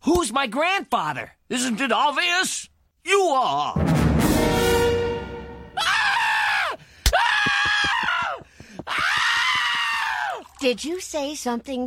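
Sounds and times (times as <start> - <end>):
speech: 0.1 - 5.0, 10.6 - 11.8
man screaming in horror: 5.8 - 10.4.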